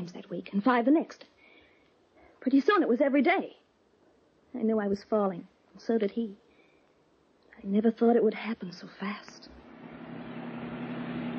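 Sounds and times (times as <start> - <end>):
speech: 0.0 - 1.3, 2.4 - 3.6, 4.5 - 6.4, 7.6 - 9.6
second-hand car engine humming steadily: 9.5 - 11.3.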